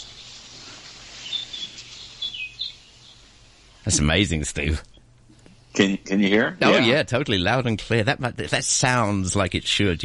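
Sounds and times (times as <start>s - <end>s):
small birds singing in a hillside village: 0.0s - 4.0s
speech: 3.8s - 4.9s, 5.8s - 10.0s.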